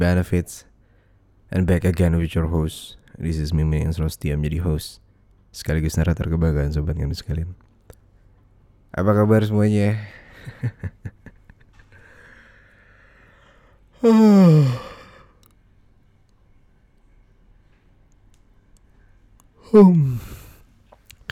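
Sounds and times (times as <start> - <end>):
speech: 0.0 - 0.7, 1.5 - 7.6, 8.9 - 11.2, 14.0 - 15.0, 19.7 - 20.4
brief soft vocal sounds: 12.0 - 15.6, 19.4 - 21.2
loud drawn-out yawns with voiced tone sliding downward: 14.0 - 15.4, 19.6 - 20.6.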